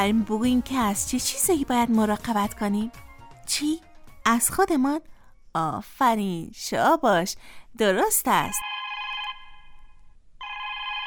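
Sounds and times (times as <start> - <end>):
speech: 0.0 - 8.7
telephone ringing in bright electronic trills: 8.6 - 9.8, 10.4 - 11.0.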